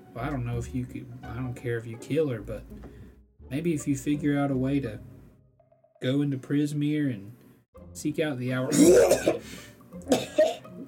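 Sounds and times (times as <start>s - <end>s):
speech: 0.2s - 5.1s, 6.0s - 10.4s
harsh raspy cough: 8.7s - 10.8s.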